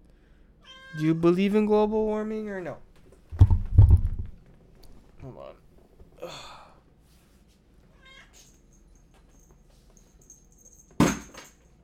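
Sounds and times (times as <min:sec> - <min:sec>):
cat meowing: 0:00.6 - 0:01.1, 0:08.0 - 0:08.4
speech: 0:00.9 - 0:02.9, 0:05.2 - 0:05.6
sudden loud knock or thump: 0:03.4 - 0:04.4.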